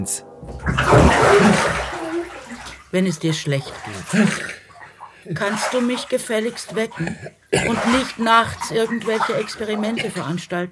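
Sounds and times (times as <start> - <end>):
speech: 0.0 - 1.9, 2.9 - 4.6, 5.2 - 10.7
water sloshing and splashing in a bathtub: 0.0 - 10.7.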